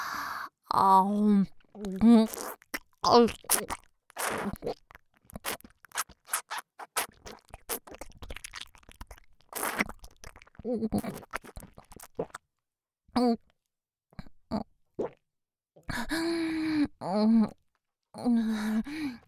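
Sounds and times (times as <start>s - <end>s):
speech: 0.7s - 4.8s, 10.6s - 11.4s, 13.2s - 13.5s, 16.0s - 17.6s, 18.2s - 19.2s
chewing and crunching while eating: 1.6s - 12.4s.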